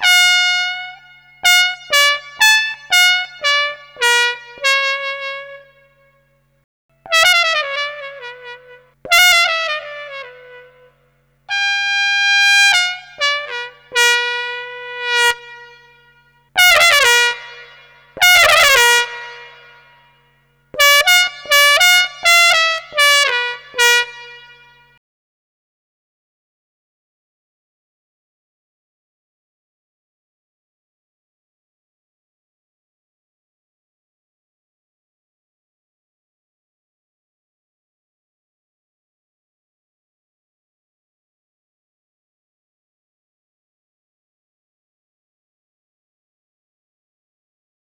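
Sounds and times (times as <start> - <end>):
physically modelled trumpet: 0.0 - 25.0.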